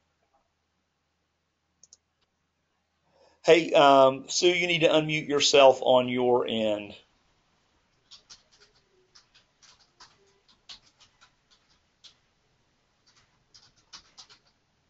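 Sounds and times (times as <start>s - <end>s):
speech: 3.4s - 7.0s
faint keyboard typing through a quiet line: 7.9s - 12.3s, 13.0s - 14.6s.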